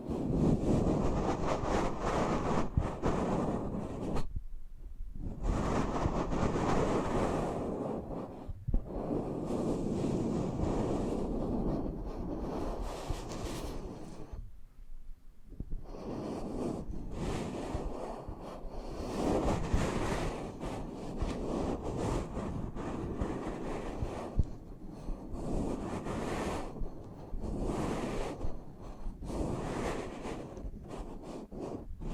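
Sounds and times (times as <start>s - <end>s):
muffled rubbing right against the microphone: 0.0s - 32.1s.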